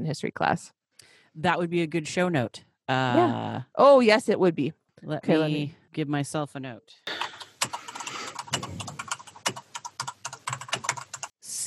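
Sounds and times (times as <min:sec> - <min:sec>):
speech: 0:00.0 - 0:00.8, 0:01.4 - 0:07.2, 0:08.5 - 0:08.9
typing on a computer keyboard: 0:07.1 - 0:11.4.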